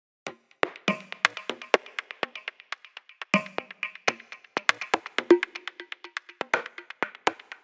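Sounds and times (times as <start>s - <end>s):
congas playing at 122 BPM: 0.3s - 7.6s.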